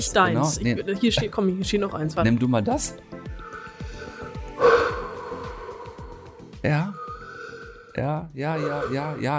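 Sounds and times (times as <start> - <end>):
speech: 0.0 - 3.3, 6.6 - 7.0, 8.0 - 9.3
hollow resonant breath blown into a small vase: 3.4 - 8.0.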